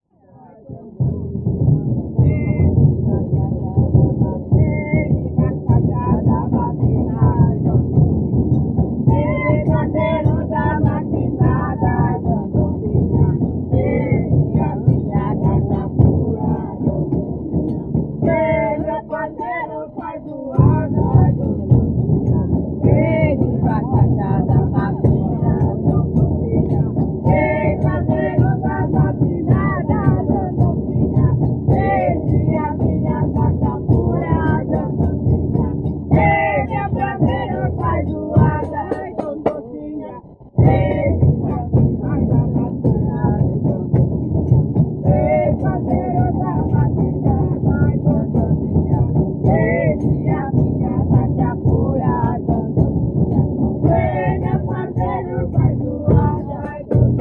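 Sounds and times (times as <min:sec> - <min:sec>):
batuque drumming: 0:00.7 - 0:39.8, 0:40.6 - 0:57.1.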